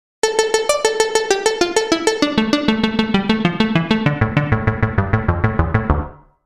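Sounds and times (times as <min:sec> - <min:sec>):
synth lead: 0:00.2 - 0:06.3.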